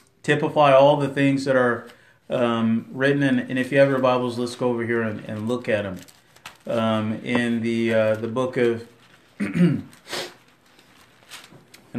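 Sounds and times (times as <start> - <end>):
speech: 0.2 - 10.2
throat clearing: 9.4 - 10.0.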